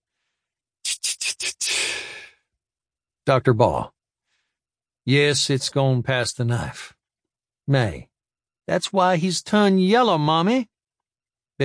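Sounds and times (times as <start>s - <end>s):
person gasping for breath: 0.9s - 2.4s
speech: 1.4s - 2.2s, 3.2s - 4.0s, 5.0s - 7.0s, 7.7s - 8.1s, 8.7s - 10.7s.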